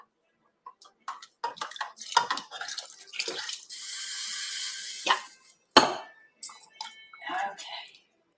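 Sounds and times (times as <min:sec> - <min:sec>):
clattering kitchen noises: 0:00.6 - 0:03.6, 0:05.0 - 0:07.2
water pouring into a pot of pumpkin soup with bouillon: 0:01.5 - 0:05.4.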